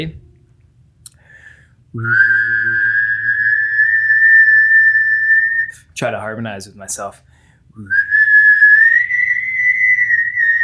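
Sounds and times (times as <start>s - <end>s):
speech: 0.0s - 0.2s, 1.9s - 2.6s, 6.0s - 8.1s
person humming a low note: 2.0s - 4.4s
person whistling a high sustained tone: 2.0s - 5.8s, 7.9s - 10.6s.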